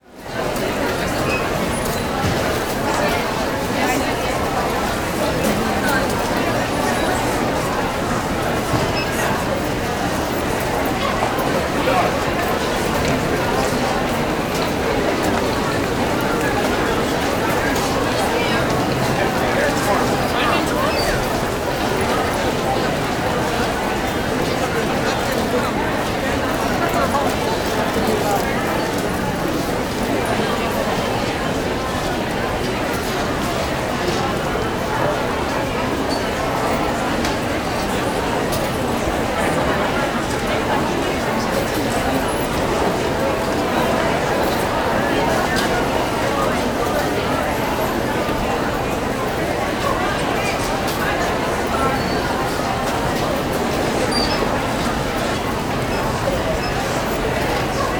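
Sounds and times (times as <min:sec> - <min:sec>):
busy bus station walla: 0:00.0 - 0:57.9.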